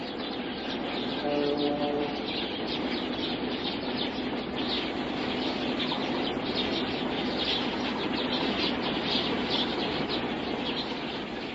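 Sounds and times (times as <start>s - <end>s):
chorus of many sparrows chirping returning to an island: 0.0s - 11.5s.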